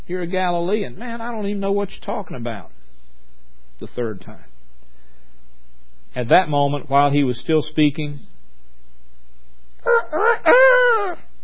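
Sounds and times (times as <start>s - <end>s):
speech: 0.1s - 2.8s, 3.8s - 4.5s, 6.1s - 8.3s
rooster crowing: 9.8s - 11.3s.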